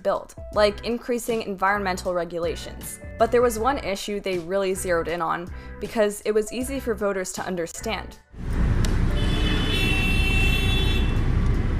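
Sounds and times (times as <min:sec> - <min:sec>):
speech: 0:00.0 - 0:08.6
busy road traffic rumbling: 0:08.4 - 0:11.7
sustained car horn blaring: 0:09.1 - 0:11.4.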